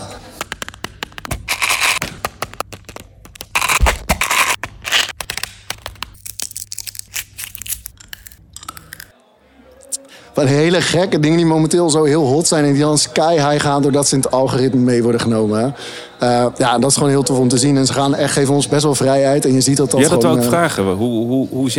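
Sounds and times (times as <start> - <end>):
crackling and crunching ASMR sounds made with Mentos candy: 0.3 - 9.2
speech: 10.4 - 21.7.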